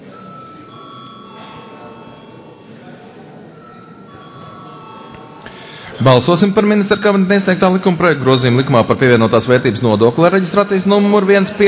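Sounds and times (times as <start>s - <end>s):
parliament bell ringing before a vote: 0.0s - 9.8s
low murmur of voices: 0.0s - 11.6s
speech: 6.0s - 11.6s.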